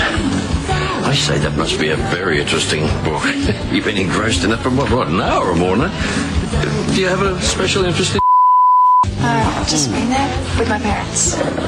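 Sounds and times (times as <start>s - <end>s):
speech: 1.1s - 8.2s, 9.3s - 11.6s
censor bleep tone over a spoken word: 8.2s - 9.1s.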